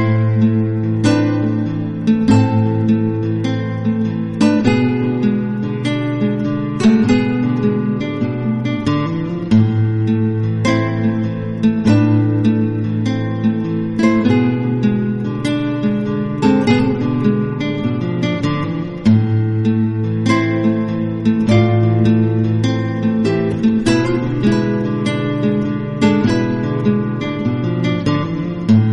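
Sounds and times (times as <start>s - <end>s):
guitar ringtone: 0.0s - 28.9s.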